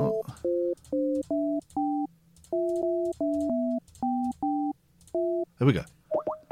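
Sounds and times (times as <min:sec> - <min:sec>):
electronic telephone tones while dialing a made-up number: 0:00.4 - 0:05.4
speech: 0:05.6 - 0:06.0.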